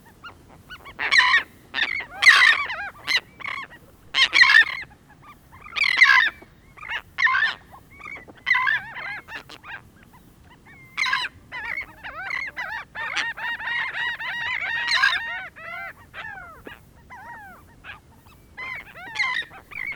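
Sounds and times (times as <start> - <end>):
royal tern feeding group calling: 0.0 - 19.9.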